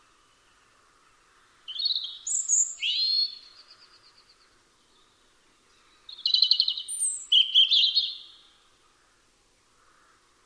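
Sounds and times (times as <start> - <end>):
European robin singing: 1.7 - 3.8, 4.9 - 8.6.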